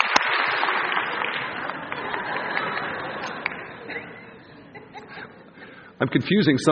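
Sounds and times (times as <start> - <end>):
audience clapping: 0.0 - 5.3
crowd chatter: 0.0 - 6.7
scattered laughter: 1.6 - 5.5
speech: 6.0 - 6.7.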